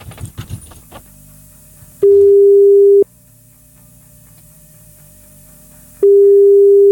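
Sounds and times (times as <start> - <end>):
handling clatter: 0.0 - 1.2
steady single-pitched telephone ringback tone while placing a call: 2.0 - 3.0, 6.0 - 6.9.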